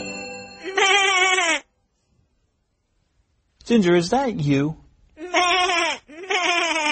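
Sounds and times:
person imitating a sheep with wavering bleats: 0.7s - 1.7s, 5.2s - 6.9s
speech: 3.7s - 4.8s.

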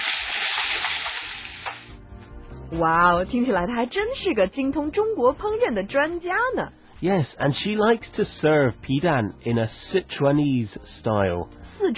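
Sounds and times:
purple amaranth sizzling while stir-fried in a pan: 0.0s - 1.9s
speech: 2.7s - 11.9s.

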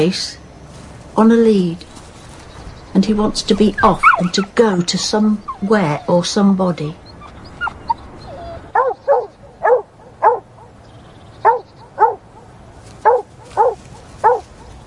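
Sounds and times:
speech: 0.0s - 0.4s, 1.2s - 1.9s, 3.0s - 7.0s
dog whining softly: 3.9s - 4.5s, 5.4s - 6.3s, 7.0s - 10.4s, 11.4s - 12.2s
dog barking excitedly: 7.6s - 10.5s, 11.4s - 12.3s, 13.0s - 14.6s.

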